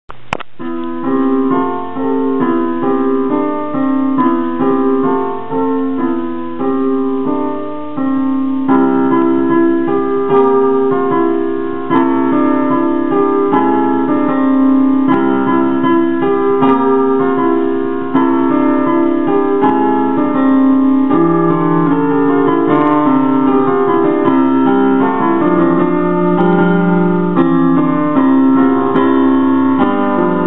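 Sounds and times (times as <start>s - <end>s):
piano recital of a holiday piece: 0.1s - 30.4s.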